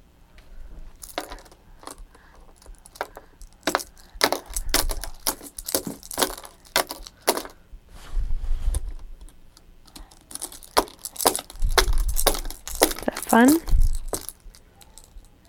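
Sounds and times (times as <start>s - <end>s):
ring of keys jangling: 1.0s - 7.6s, 9.9s - 15.4s
speech: 13.4s - 13.7s.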